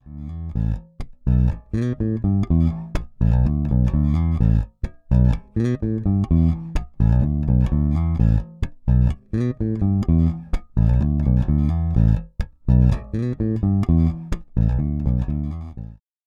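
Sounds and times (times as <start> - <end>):
Precision Bass with both pickups active: 0.0 - 16.0.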